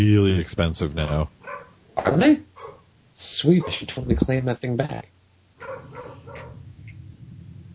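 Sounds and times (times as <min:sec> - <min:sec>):
speech: 0:00.0 - 0:06.5
steady low hum: 0:00.0 - 0:07.7
dog barking: 0:01.1 - 0:01.8, 0:02.5 - 0:02.9, 0:03.6 - 0:03.9, 0:05.6 - 0:06.6.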